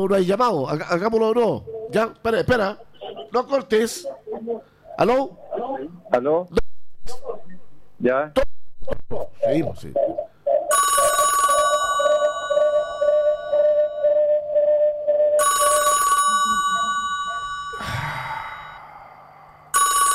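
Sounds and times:
speech: 0.0s - 7.2s, 8.0s - 10.2s
telephone ringing with electronic bursts: 10.6s - 17.8s, 19.8s - 20.1s.

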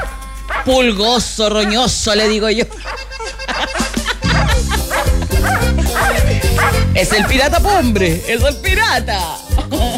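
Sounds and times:
small long-haired curly dog barking with yips and woofs: 0.0s - 0.7s, 3.8s - 7.4s
speech: 0.7s - 3.8s, 5.4s - 9.9s
laughter: 2.5s - 7.3s, 9.5s - 9.9s.

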